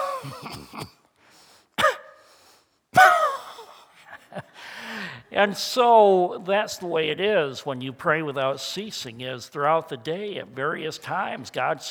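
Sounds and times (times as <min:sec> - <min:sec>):
person coughing: 0:00.0 - 0:01.1, 0:01.8 - 0:02.2, 0:03.0 - 0:03.8
speech: 0:05.4 - 0:11.9.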